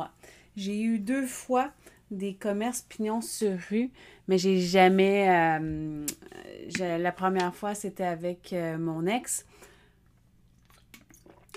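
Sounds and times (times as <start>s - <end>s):
speech: 0.0s - 9.6s
faint steady hum: 0.0s - 11.5s
sips of water: 10.6s - 11.5s
small wet slurps: 10.6s - 11.5s.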